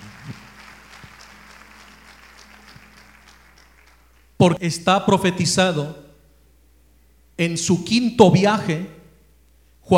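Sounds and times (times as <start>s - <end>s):
audience applause at a religious talk: 0.0s - 4.4s
speech: 4.4s - 6.0s, 7.4s - 9.0s.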